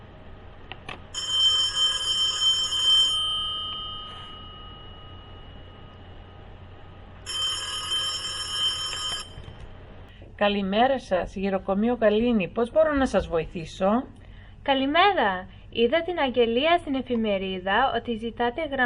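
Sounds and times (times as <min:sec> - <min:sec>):
telephone ringing with bright rapidly trilling electronic bell: 0:01.1 - 0:06.3, 0:07.2 - 0:09.6
speech: 0:10.4 - 0:18.8.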